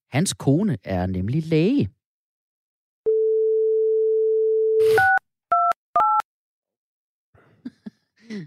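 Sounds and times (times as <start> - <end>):
speech: 0.2 - 2.0
telephone dial tone: 3.1 - 6.2.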